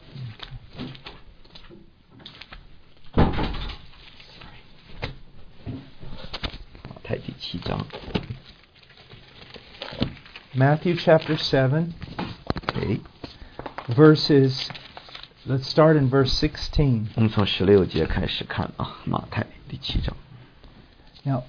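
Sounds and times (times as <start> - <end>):
light shuffling and handling noises: 0.0 - 3.1, 3.8 - 21.4
door swinging shut with a firm thud: 3.1 - 3.9
speech: 7.4 - 8.3, 10.6 - 12.0, 12.8 - 13.1, 13.9 - 14.8, 15.4 - 20.2, 21.2 - 21.4.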